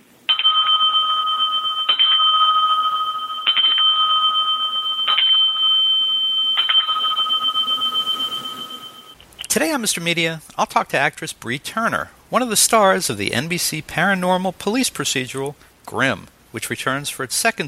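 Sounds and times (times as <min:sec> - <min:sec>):
small bell being struck: 0:00.3 - 0:09.2
speech: 0:09.6 - 0:17.6.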